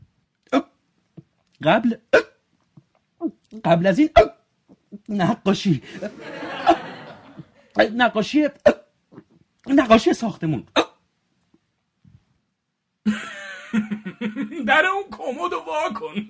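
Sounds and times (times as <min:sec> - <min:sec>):
sharp abrupt hiccups: 0:00.5 - 0:00.8, 0:02.0 - 0:02.4, 0:03.2 - 0:05.0, 0:08.6 - 0:09.4, 0:10.7 - 0:11.0
speech: 0:01.6 - 0:02.3, 0:03.6 - 0:04.3, 0:05.1 - 0:06.4, 0:07.8 - 0:08.7, 0:09.8 - 0:10.7, 0:14.7 - 0:16.2
person chuckling: 0:06.0 - 0:07.8, 0:13.1 - 0:14.7, 0:15.9 - 0:16.2.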